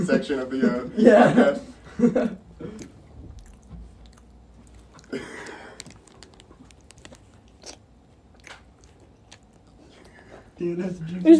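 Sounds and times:
speech: 0.0s - 2.8s, 10.6s - 11.3s
open-mouthed chewing into a microphone: 2.6s - 10.6s
crunchy bites: 2.8s - 9.8s.

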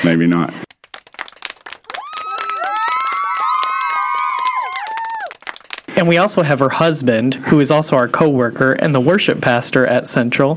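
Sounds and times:
speech: 0.0s - 0.7s, 6.0s - 10.5s
burst of applause with dense clapping: 0.7s - 6.0s
crowd of voices cheering and whooping: 1.6s - 5.8s.

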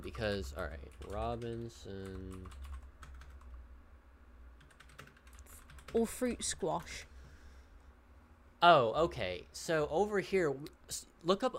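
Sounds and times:
low hum: 0.0s - 11.5s
speech: 0.2s - 2.7s, 5.9s - 7.1s, 8.6s - 11.5s
typing on a computer keyboard: 0.2s - 3.5s, 4.6s - 6.0s.

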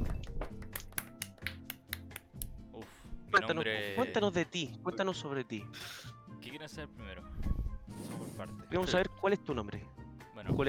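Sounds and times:
spontaneous applause: 0.0s - 2.2s
speech: 3.3s - 10.6s.

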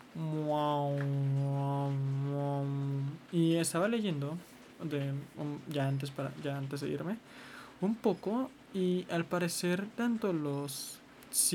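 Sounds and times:
speech: 0.2s - 1.2s, 3.3s - 11.5s
voice imitating a didgeridoo with a buzzing low drone: 0.2s - 3.2s.

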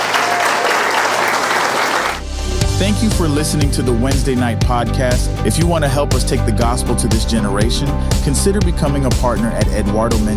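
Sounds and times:
audience applause after a church sermon: 0.0s - 2.2s
speech: 2.8s - 10.3s.

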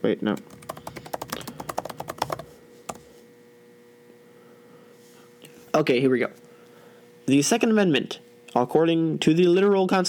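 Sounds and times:
speech: 0.0s - 0.6s, 5.8s - 6.4s, 7.3s - 10.0s
clicking of keys on a computer keyboard: 0.4s - 3.2s.

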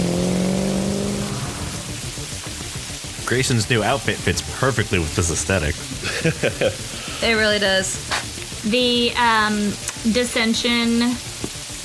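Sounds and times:
motorcycle engine whipping past: 0.0s - 2.6s
steady rain-like hiss: 0.0s - 11.8s
speech: 3.3s - 11.3s
laughter: 5.9s - 7.4s.

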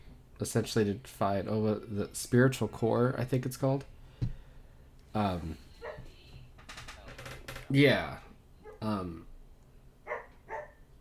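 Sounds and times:
speech: 0.4s - 3.9s, 5.2s - 5.7s, 7.7s - 9.3s
dog barking in the background: 5.8s - 6.0s, 10.1s - 10.8s.

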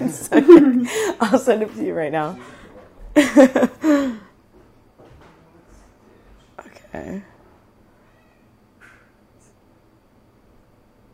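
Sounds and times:
laughter: 0.0s - 1.7s, 3.1s - 4.2s
speech: 0.6s - 2.6s, 3.2s - 4.2s, 6.9s - 7.3s
cat meowing: 8.0s - 8.5s.

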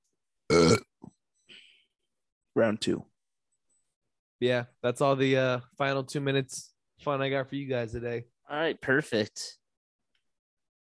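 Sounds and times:
loud belch: 0.5s - 1.0s
speech: 2.6s - 3.1s, 4.4s - 9.6s.

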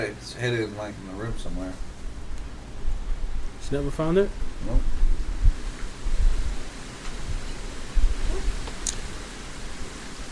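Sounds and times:
speech: 0.0s - 1.9s, 3.7s - 5.0s
strong wind roaring outside: 1.3s - 10.3s.

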